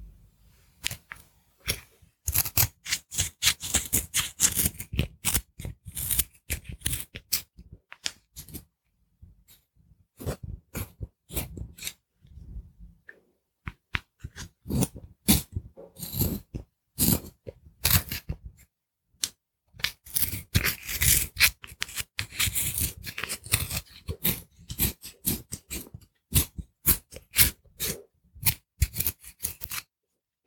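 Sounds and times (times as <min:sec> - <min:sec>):
pencil being sharpened: 0:01.6 - 0:08.6, 0:10.2 - 0:12.0, 0:14.2 - 0:18.4, 0:19.8 - 0:29.9.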